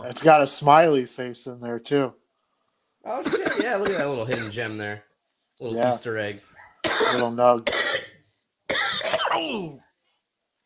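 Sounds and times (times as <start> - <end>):
speech: 0.0 - 2.2, 3.0 - 7.8, 9.4 - 9.8
harsh raspy cough with rough throat-clearing: 3.1 - 4.7, 6.8 - 9.8.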